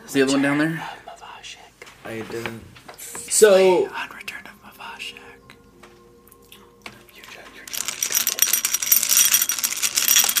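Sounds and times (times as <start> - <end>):
speech: 0.1 - 2.8, 3.4 - 4.2
dice rattling and clattering: 7.7 - 10.3.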